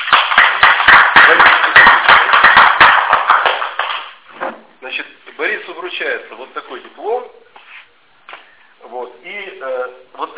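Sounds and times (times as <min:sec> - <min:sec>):
audience applause: 0:00.0 - 0:04.1
speech: 0:06.0 - 0:07.4.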